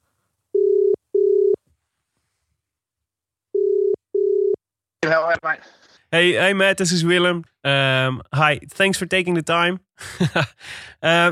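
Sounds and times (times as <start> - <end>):
telephone ringback tone: 0.6 - 1.6, 3.5 - 4.6
speech: 5.0 - 11.3.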